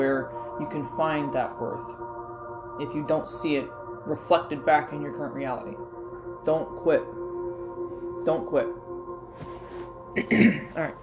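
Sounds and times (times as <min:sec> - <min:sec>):
speech: 0:00.0 - 0:02.2, 0:02.8 - 0:07.2, 0:08.2 - 0:08.8, 0:10.1 - 0:11.0
person clearing throat: 0:10.2 - 0:11.0.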